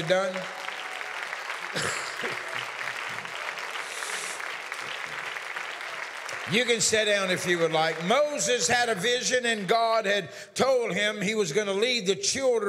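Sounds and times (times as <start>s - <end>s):
speech: 0.0s - 0.6s, 1.7s - 2.7s, 6.5s - 12.6s
faint cheering: 0.0s - 8.1s
large group clapping in praise during a sermon: 0.0s - 9.8s.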